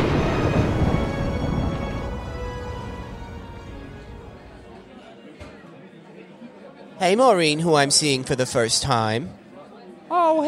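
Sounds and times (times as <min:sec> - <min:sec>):
steady rain: 0:00.0 - 0:04.6
thunder rumbling: 0:00.0 - 0:04.8
speech: 0:07.0 - 0:09.4, 0:10.2 - 0:10.4.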